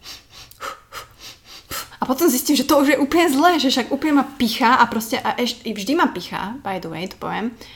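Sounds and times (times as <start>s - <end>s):
person imitating heavy breathing while running: 0.0s - 2.0s
speech: 2.0s - 7.7s.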